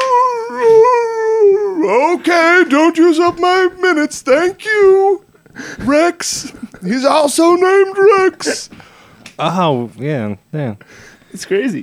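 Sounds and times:
dog howling: 0.0s - 3.8s
speech: 2.2s - 11.8s.

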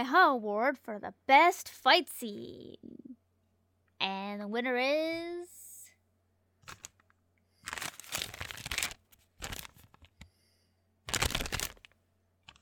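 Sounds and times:
speech: 0.0s - 3.0s, 4.0s - 5.6s
small paper rustles and clicks: 6.6s - 7.0s, 7.6s - 10.3s, 11.1s - 12.6s
paper envelope being torn open: 7.6s - 10.2s, 11.1s - 11.9s, 12.5s - 12.6s.

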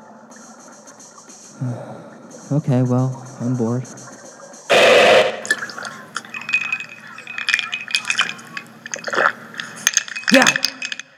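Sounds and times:
speech: 1.6s - 4.0s
whiskey pouring into a glass: 5.0s - 11.1s.

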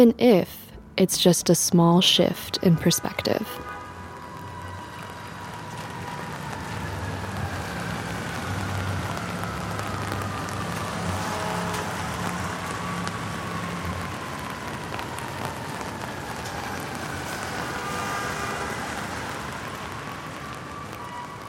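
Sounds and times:
speech: 0.0s - 3.8s
low traffic rumble: 2.7s - 21.4s
faint passing-vehicle tones: 2.8s - 21.4s
steady rain falling on hard surfaces of a city street in Manhattan: 2.8s - 21.4s.

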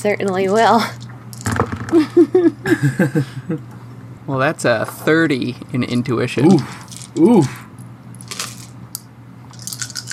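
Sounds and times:
speech: 0.0s - 1.0s, 1.9s - 7.6s
dice being rolled: 8.2s - 8.7s, 9.5s - 10.1s.

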